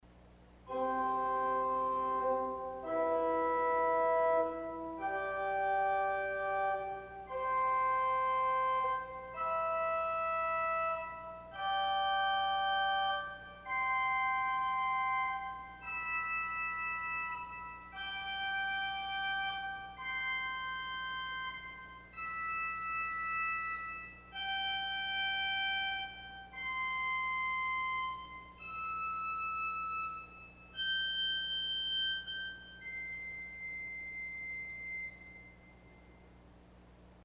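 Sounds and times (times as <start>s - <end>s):
Fourniture organ stop arpeggio on a 1951 Möller organ: 0.7s - 35.4s.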